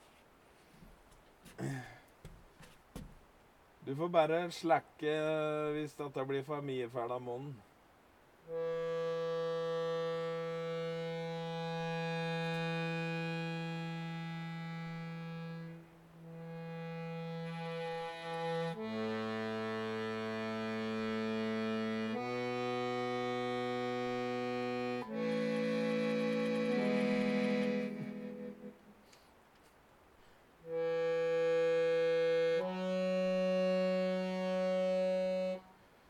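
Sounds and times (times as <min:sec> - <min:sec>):
speech: 0:03.9 - 0:07.7
accordion playing long low mournful held notes: 0:08.4 - 0:29.0, 0:30.6 - 0:36.0.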